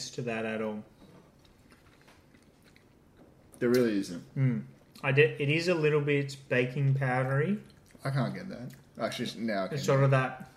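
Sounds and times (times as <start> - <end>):
speech: 0.0 - 0.9, 3.6 - 10.5
chewing cake: 1.0 - 3.8, 7.6 - 9.0.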